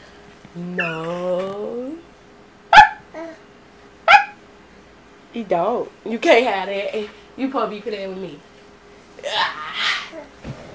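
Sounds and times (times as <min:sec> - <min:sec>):
speech: 0:00.5 - 0:01.8, 0:05.4 - 0:08.5
dog barking: 0:02.7 - 0:03.1, 0:04.1 - 0:04.4.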